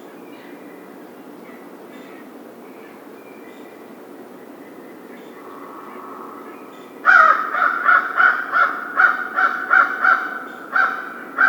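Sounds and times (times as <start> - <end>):
American crow cawing harsh nasal caws: 5.4 - 11.4.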